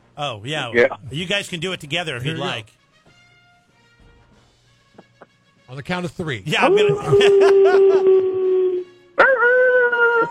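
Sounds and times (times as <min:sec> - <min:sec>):
speech: 0:00.2 - 0:02.8, 0:05.7 - 0:08.4
laughter: 0:06.5 - 0:08.4
person imitating a wolf howl: 0:06.6 - 0:10.2.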